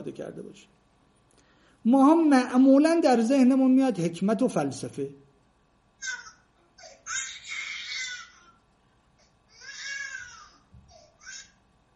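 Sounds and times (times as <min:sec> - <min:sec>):
speech: 0:00.1 - 0:00.8, 0:01.8 - 0:05.2, 0:06.0 - 0:06.2
baby crying in wailing bursts and whimpers: 0:06.0 - 0:08.6, 0:09.5 - 0:11.6.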